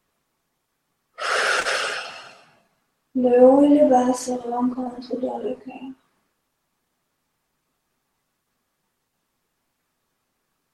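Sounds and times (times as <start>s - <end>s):
deep breath in a guided breathing meditation: 1.2s - 2.6s
speech: 3.2s - 6.0s.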